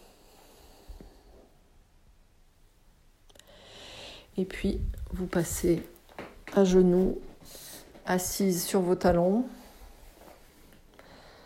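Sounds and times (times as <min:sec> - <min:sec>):
slow deep breathing during yoga exercise: 0:00.0 - 0:01.6, 0:03.3 - 0:04.4, 0:09.6 - 0:11.4
speech: 0:04.4 - 0:05.9, 0:06.6 - 0:09.6.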